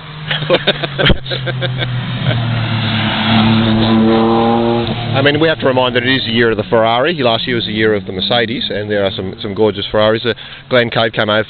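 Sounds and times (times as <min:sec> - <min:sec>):
Porsche driving past at an outdoor car gathering: 0:00.0 - 0:09.8
laughter: 0:00.3 - 0:02.4
speech: 0:00.4 - 0:04.4, 0:05.2 - 0:11.4.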